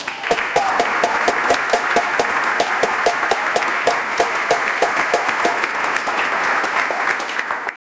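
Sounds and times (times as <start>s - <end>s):
people clapping in an auditorium: 0.0s - 7.8s.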